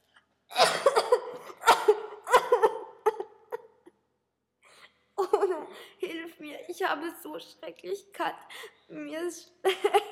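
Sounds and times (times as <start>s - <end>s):
loud harsh coughing at night: 0.5s - 3.4s
speech: 6.8s - 10.0s.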